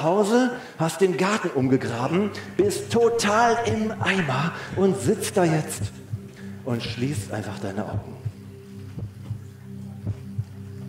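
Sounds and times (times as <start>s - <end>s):
speech: 0.0s - 6.0s, 6.6s - 8.3s
steady low hum: 2.6s - 6.2s
mother's slow heartbeat: 2.6s - 6.3s, 7.9s - 10.5s.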